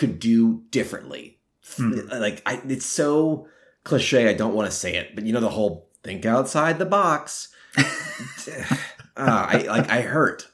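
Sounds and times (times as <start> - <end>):
speech: 0.0 - 10.5
laughter: 7.8 - 10.3
person with the flu coughing: 8.2 - 9.9.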